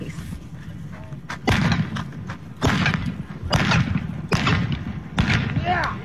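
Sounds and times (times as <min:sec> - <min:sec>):
blank pistol shots fired from two pistols on a galloping horse: 0:01.4 - 0:02.0, 0:02.6 - 0:05.8.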